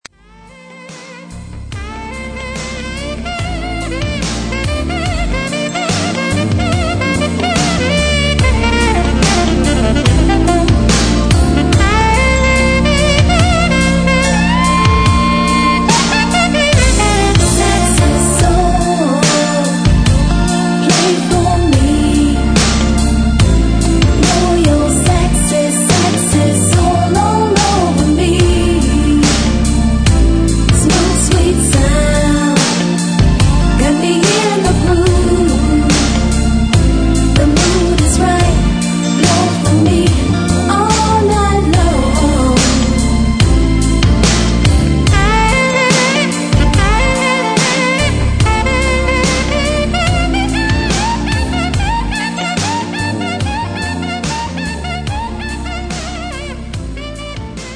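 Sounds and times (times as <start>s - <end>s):
saxophone: 0.0s - 57.7s.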